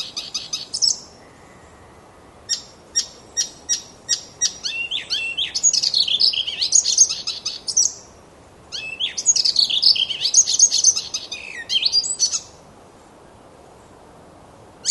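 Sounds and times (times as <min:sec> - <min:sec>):
icterine warbler hippolais icterina singing chattering phrase: 0:00.0 - 0:01.1, 0:02.5 - 0:08.1, 0:08.7 - 0:12.5.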